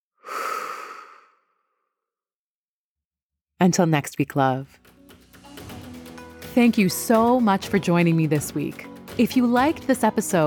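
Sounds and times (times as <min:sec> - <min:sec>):
deep breath in and out: 0:00.1 - 0:01.9
speech: 0:03.6 - 0:04.9, 0:06.6 - 0:10.4.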